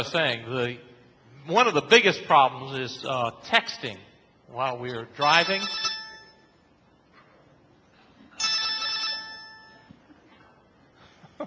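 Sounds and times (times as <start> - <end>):
speech: 0.0 - 5.8
mobile phone electronic chiming ringtone: 5.3 - 6.4, 8.4 - 9.9.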